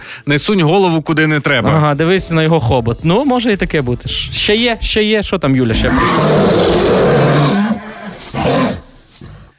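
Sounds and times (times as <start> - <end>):
speech: 0.2 - 7.6
person imitating a lion's roar: 5.8 - 9.5.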